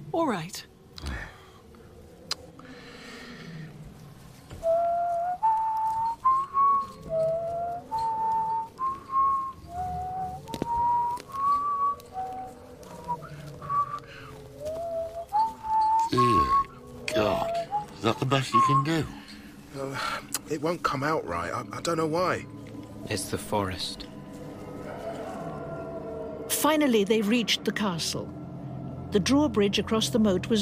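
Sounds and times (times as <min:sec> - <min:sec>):
low rumble: 0:00.0 - 0:30.6
speech: 0:00.1 - 0:01.2, 0:18.4 - 0:19.2, 0:19.8 - 0:24.1, 0:26.6 - 0:28.4, 0:29.1 - 0:30.6
person whistling a simple halting tune: 0:04.6 - 0:19.4.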